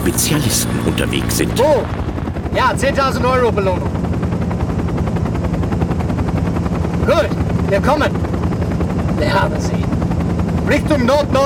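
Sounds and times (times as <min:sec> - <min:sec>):
speech: 0:00.0 - 0:04.1, 0:07.1 - 0:08.4, 0:09.2 - 0:10.0, 0:10.7 - 0:11.4
helicopter rotor blades chopping in flight: 0:00.0 - 0:11.4.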